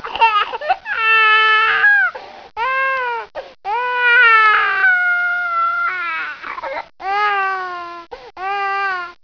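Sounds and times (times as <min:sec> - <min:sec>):
baby crying: 0:00.0 - 0:09.2.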